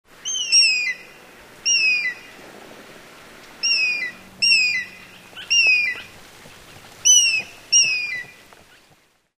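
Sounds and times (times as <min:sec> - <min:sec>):
faint background hiss: 0:00.1 - 0:09.3
eagle whistled calls: 0:00.2 - 0:02.3, 0:03.6 - 0:06.1, 0:07.0 - 0:08.4.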